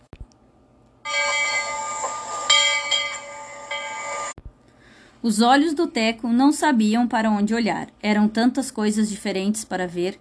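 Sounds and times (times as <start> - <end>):
streetcar bell ringing: 1.0 - 4.4
speech: 5.2 - 10.1.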